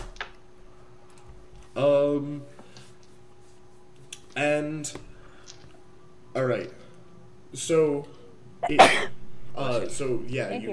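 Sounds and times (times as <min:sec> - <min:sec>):
hum: 0:00.0 - 0:10.7
speech: 0:01.8 - 0:02.6, 0:04.4 - 0:05.1, 0:06.4 - 0:06.8, 0:07.5 - 0:10.7
person sneezing: 0:08.6 - 0:09.2.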